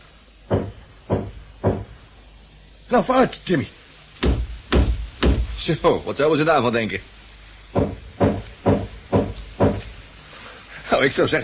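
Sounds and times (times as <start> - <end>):
knocking on a cabin wall: 0.5 - 2.0, 4.2 - 5.6, 7.8 - 10.0
speech: 2.9 - 3.8, 5.6 - 7.2, 11.0 - 11.4.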